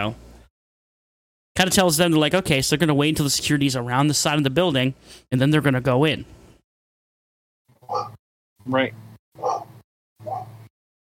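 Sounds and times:
speech: 0:00.0 - 0:00.2, 0:01.6 - 0:06.4, 0:07.9 - 0:09.5
dog barking: 0:07.8 - 0:08.2, 0:09.4 - 0:10.6.

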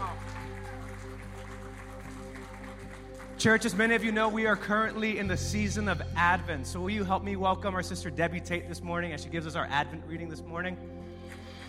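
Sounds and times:
church audience applauding for the worship team: 0:00.0 - 0:05.3, 0:11.2 - 0:11.6
sustained keyboard or organ chords ringing: 0:01.0 - 0:11.6
speech: 0:03.4 - 0:11.0.

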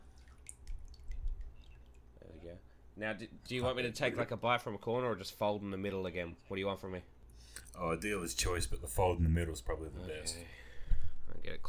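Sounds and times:
water dripping: 0:00.0 - 0:03.8
speech: 0:02.5 - 0:10.7.

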